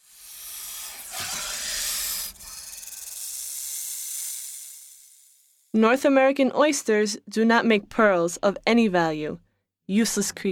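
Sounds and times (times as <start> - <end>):
snake hissing: 0.0 - 5.7
speech: 5.8 - 10.5.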